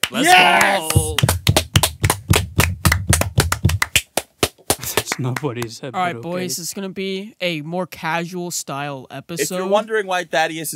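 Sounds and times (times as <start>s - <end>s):
small group clapping hands in a rhythmic beat: 0.0s - 5.8s
speech: 0.1s - 1.0s, 5.2s - 10.7s
shouted cheer: 0.1s - 1.2s.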